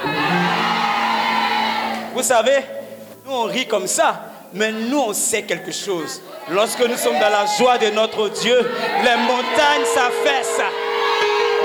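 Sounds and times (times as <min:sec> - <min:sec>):
crowd at a worship gathering shouting a collective healing cry: 0:00.0 - 0:02.2, 0:05.6 - 0:11.6
speech: 0:02.2 - 0:10.8.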